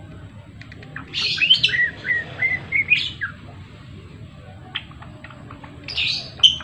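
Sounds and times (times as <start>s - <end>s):
low background hum: 0.0s - 6.6s
Java sparrow singing chirps and bell-like notes: 0.7s - 3.5s, 4.6s - 6.6s.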